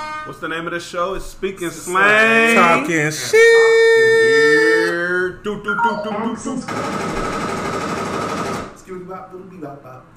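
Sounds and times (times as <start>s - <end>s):
speech: 0.3s - 4.6s, 5.4s - 7.4s, 9.0s - 10.1s
automatic gunfire: 6.7s - 8.8s.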